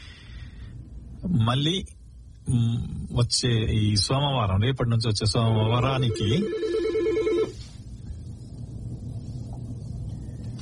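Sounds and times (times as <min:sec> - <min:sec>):
low steady hiss: 0:00.0 - 0:10.6
speech: 0:01.2 - 0:06.8
telephone ringing for an incoming call: 0:06.0 - 0:07.6.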